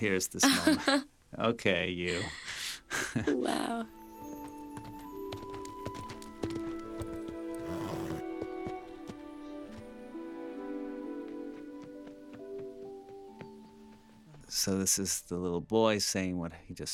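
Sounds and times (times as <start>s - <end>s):
speech: 0.0s - 4.4s, 14.6s - 16.9s
horse hooves clip-clopping as a horse is ridden: 4.0s - 15.0s.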